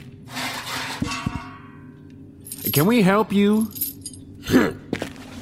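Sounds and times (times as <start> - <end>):
door swinging open with a rushing scrape: 0.3 - 1.1
speech: 2.7 - 3.8, 4.5 - 4.8.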